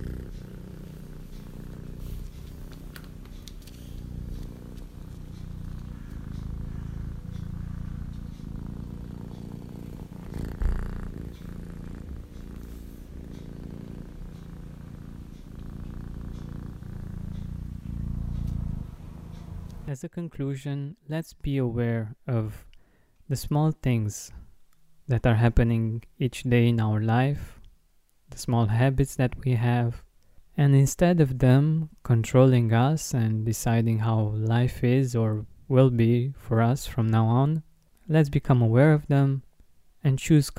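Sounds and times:
female cat purring: 0:00.0 - 0:19.9
speech: 0:19.9 - 0:22.7, 0:23.3 - 0:24.4, 0:25.1 - 0:27.6, 0:28.3 - 0:30.0, 0:30.6 - 0:40.5.

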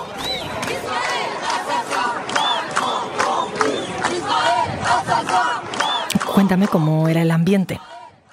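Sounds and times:
large protest crowd chanting slogans in unison: 0:00.0 - 0:08.3
whistles: 0:00.2 - 0:00.6, 0:02.4 - 0:02.7, 0:05.8 - 0:06.2
speech: 0:06.4 - 0:07.9.

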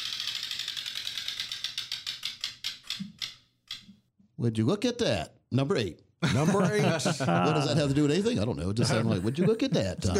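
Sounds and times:
prize wheel with eighteen slots spinning and clicking: 0:00.0 - 0:03.8
speech: 0:04.4 - 0:10.1
laughter: 0:06.2 - 0:10.1.

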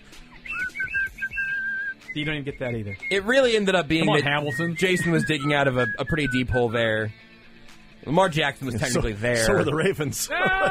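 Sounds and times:
person whistling a tune: 0:00.3 - 0:03.4, 0:04.0 - 0:06.8
speech: 0:02.1 - 0:07.2, 0:08.0 - 0:10.6
laughter: 0:03.9 - 0:05.4, 0:08.6 - 0:10.6.

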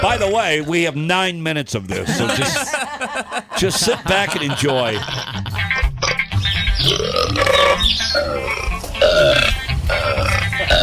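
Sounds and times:
cows burping: 0:00.0 - 0:00.6, 0:05.0 - 0:10.8
laughter: 0:00.0 - 0:01.0, 0:01.8 - 0:06.0
speech: 0:00.0 - 0:05.6.

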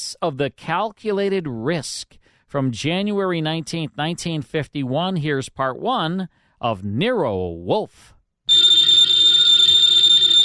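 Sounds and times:
speech: 0:00.2 - 0:08.2
old-fashioned telephone bell ringing: 0:08.5 - 0:10.4.

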